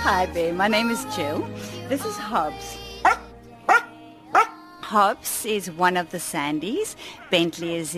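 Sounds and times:
speech: 0.1 - 2.8, 4.9 - 7.9
rescue dog barking: 3.0 - 4.6.

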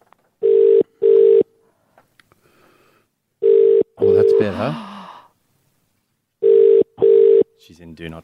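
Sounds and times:
phone call ringing out: 0.4 - 1.5, 3.4 - 4.5, 6.4 - 7.5
speech: 4.4 - 4.9, 7.8 - 8.2.

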